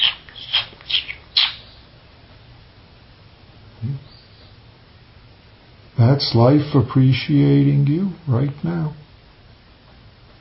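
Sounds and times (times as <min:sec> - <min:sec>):
birds chirping: 0:00.0 - 0:01.9, 0:03.9 - 0:04.7
speech: 0:06.0 - 0:09.0.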